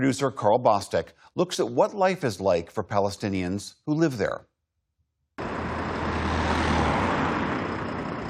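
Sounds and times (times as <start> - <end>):
speech: 0.0 - 4.5
large bus engine idling: 5.4 - 8.2
road and street noise: 5.4 - 8.2.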